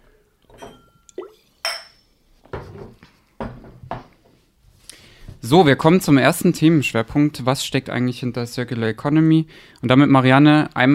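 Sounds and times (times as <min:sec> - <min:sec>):
glasses clinking in a toast: 0:00.5 - 0:02.1
glassware being handled and set down: 0:00.5 - 0:04.1
speech: 0:05.4 - 0:10.9.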